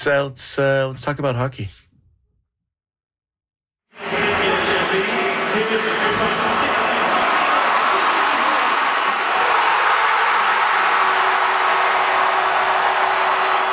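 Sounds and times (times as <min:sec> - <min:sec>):
speech: 0:00.0 - 0:01.9
large indoor crowd roaring and cheering at a hockey watch party: 0:03.9 - 0:13.7
scattered shouts: 0:05.9 - 0:13.7
applause: 0:06.6 - 0:13.7.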